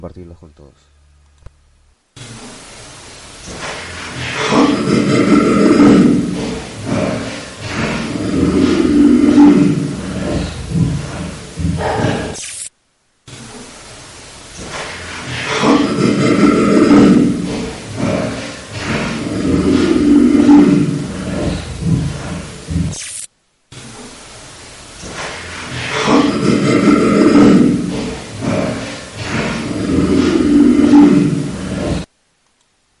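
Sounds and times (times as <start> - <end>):
speech: 0.0 - 1.0
noisy background: 0.0 - 32.9
harsh distorted sinister laugh-like growling sound: 3.5 - 12.4, 14.6 - 23.0, 25.2 - 32.1.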